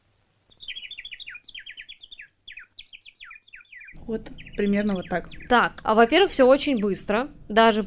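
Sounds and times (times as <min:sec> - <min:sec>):
sparrow chirping: 0:00.5 - 0:07.8
speech: 0:04.1 - 0:07.8.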